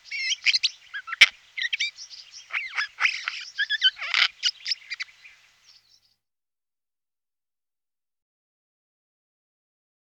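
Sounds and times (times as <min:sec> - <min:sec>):
Eurasian jay chattering: 0:00.0 - 0:06.0.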